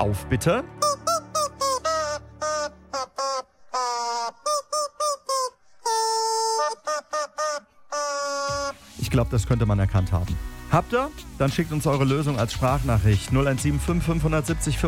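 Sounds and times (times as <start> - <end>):
speech: 0.0 - 0.8, 9.2 - 14.8
rubber squeaky chicken dog toy squeezed by hand playing a hit song tune: 0.8 - 8.8.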